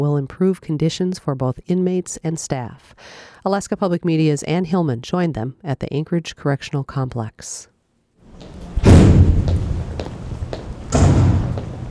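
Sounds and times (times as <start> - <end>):
speech: 0.0 - 7.7
heavy metal prison door slamming shut in Alaska: 8.6 - 10.0, 10.8 - 11.8
smaller clanks and knocks: 8.8 - 11.8.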